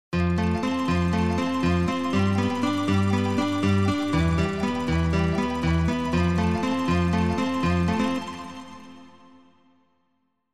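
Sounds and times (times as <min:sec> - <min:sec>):
synthesized nylon guitar sound: 0:00.2 - 0:09.1.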